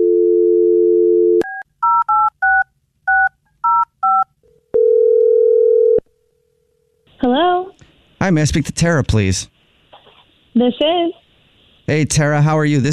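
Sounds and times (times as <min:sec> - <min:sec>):
steady telephone dial tone: 0:00.0 - 0:01.6, 0:04.8 - 0:06.0
two-pitch telephone keypad beeps: 0:01.4 - 0:04.3
speech: 0:08.3 - 0:09.5, 0:10.6 - 0:11.2, 0:11.9 - 0:12.9.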